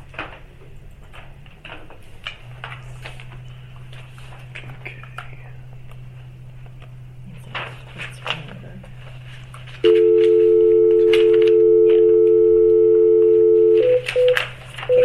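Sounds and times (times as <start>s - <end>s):
faint low hum: 2.6s - 15.0s
telephone dial tone on a main phone line: 9.8s - 15.0s.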